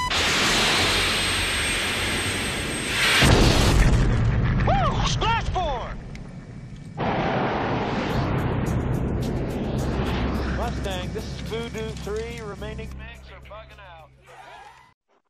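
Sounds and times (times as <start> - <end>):
fighter jet engine roar: 0.0 - 4.4, 5.4 - 12.8
missile launched from a fighter jet whooshing blast: 0.1 - 4.7, 7.0 - 11.6.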